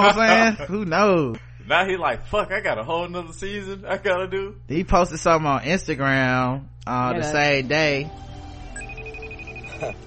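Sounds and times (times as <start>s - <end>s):
speech: 0.0s - 8.3s, 9.8s - 10.0s
phone ringtone: 8.6s - 10.0s.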